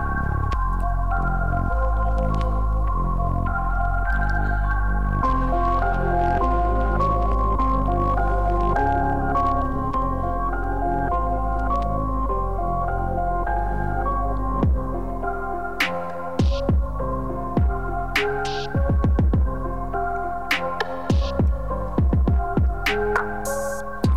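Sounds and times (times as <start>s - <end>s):
hip-hop beat with sustained tones and a heavy bass: 0.0s - 24.1s
punchy kick drum hits: 14.6s - 14.9s, 16.4s - 17.0s, 17.6s - 17.8s, 18.8s - 19.6s, 21.1s - 22.9s.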